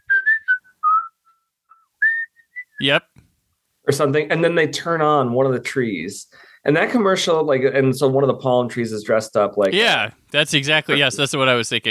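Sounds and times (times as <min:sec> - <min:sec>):
person whistling a short lilting tune: 0:00.0 - 0:02.9
speech: 0:02.8 - 0:03.2, 0:03.9 - 0:11.8.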